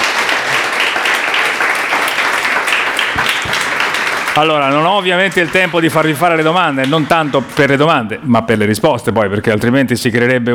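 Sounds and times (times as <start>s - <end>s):
audience applause: 0.0s - 8.1s
speech: 4.4s - 10.5s.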